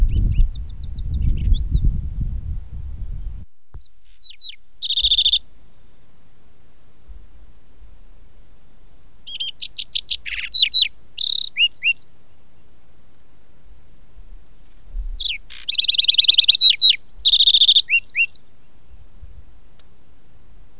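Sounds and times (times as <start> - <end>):
lark sparrow singing: 0.0 - 1.9, 3.8 - 5.4, 9.2 - 12.7, 15.2 - 19.1.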